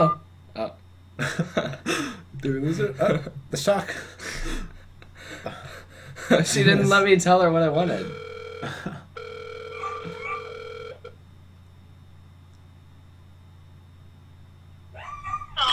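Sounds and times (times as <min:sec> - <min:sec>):
steady electronic phone-like tone: 0:00.0 - 0:00.2, 0:08.0 - 0:11.2
low hum: 0:00.0 - 0:15.7
speech: 0:02.4 - 0:04.6, 0:06.3 - 0:09.0
dogs barking: 0:09.7 - 0:10.6, 0:15.0 - 0:15.6.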